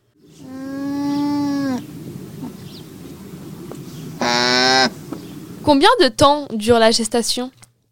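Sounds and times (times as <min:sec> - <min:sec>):
llama mother and newborn cria humming softly: 0:00.3 - 0:02.7, 0:04.2 - 0:05.0
speech: 0:05.7 - 0:07.6.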